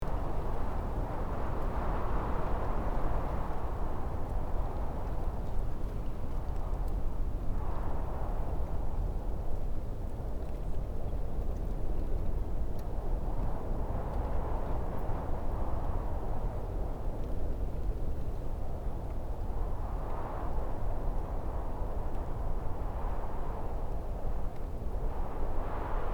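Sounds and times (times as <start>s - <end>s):
soft desert wind: 0.0s - 26.1s.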